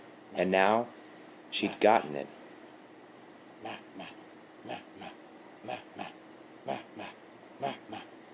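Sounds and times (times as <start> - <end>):
speech: 0.3 - 2.4, 3.6 - 6.8, 7.6 - 8.1
Shih Tzu dog making rhythmic chanting noises: 3.6 - 8.2.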